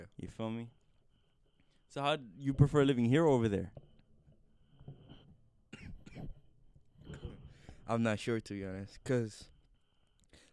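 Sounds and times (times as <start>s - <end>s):
faint room hum: 0.0s - 10.5s
speech: 0.2s - 0.8s, 1.9s - 3.8s, 7.9s - 9.5s
person coughing in harsh raspy bursts: 5.7s - 6.4s.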